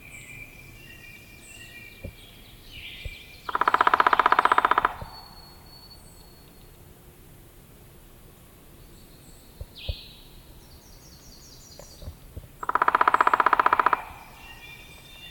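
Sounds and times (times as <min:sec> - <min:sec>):
soft bird calls: 0:00.0 - 0:06.9, 0:08.8 - 0:15.2
Picoides pubescens downy woodpecker rattling call: 0:01.6 - 0:06.7, 0:11.7 - 0:15.2.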